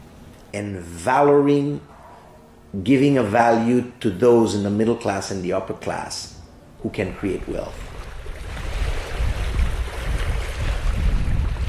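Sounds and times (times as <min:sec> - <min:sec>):
speech: 0:00.5 - 0:01.9, 0:02.7 - 0:07.9
wind buffeting on a shore: 0:07.1 - 0:11.6
waves washing onto a garbage-strewn shore: 0:07.8 - 0:11.6.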